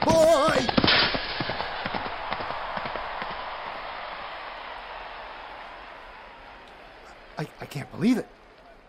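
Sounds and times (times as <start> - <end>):
horse hooves galloping during a joust: 0.7 - 3.6
speech: 7.7 - 8.4.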